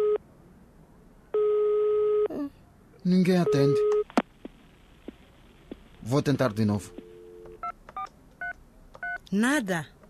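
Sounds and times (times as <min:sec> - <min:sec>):
ringback tone of an outgoing telephone call: 0:01.4 - 0:02.3, 0:03.4 - 0:04.0, 0:06.8 - 0:08.1
speech: 0:03.0 - 0:04.0, 0:06.1 - 0:07.0, 0:09.3 - 0:10.0.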